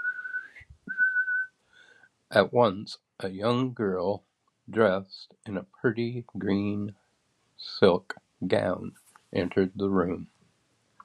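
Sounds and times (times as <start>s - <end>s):
whistle being blown: 0.0s - 1.5s
speech: 2.3s - 7.0s, 7.6s - 10.4s.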